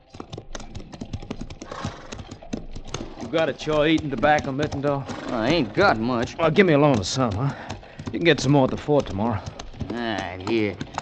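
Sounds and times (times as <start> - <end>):
horse hooves clip-clopping at a walk on a long march: 0.0 - 11.0
speech: 3.3 - 10.9.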